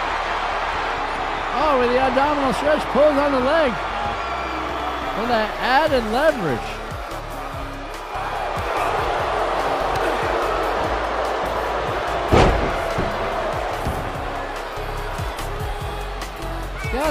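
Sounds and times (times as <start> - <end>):
crowd roar in a wrestling video game: 0.0 - 17.0
speech: 1.6 - 3.9, 5.2 - 6.8
heavy power-slam impact in a wrestling video game: 12.2 - 14.2.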